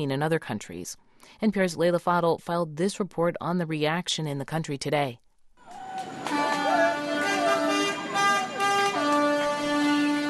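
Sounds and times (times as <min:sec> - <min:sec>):
speech: 0:00.0 - 0:05.8
street noise: 0:05.6 - 0:10.2
car horns honking in celebration: 0:06.2 - 0:10.2.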